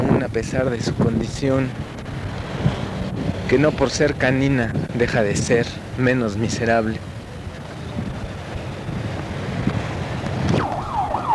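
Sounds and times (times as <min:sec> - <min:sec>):
street noise: 0:00.0 - 0:11.3
wind: 0:00.0 - 0:11.3
speech: 0:00.2 - 0:01.9, 0:03.5 - 0:07.2
siren wailing on a city street: 0:10.5 - 0:11.3.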